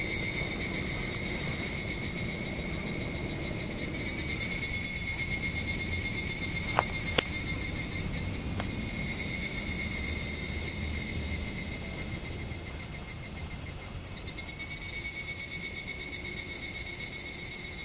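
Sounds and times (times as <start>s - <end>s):
higurashi cicada singing a steady shrill drone: 0.0s - 17.8s
low rumbling background noise: 0.0s - 17.8s.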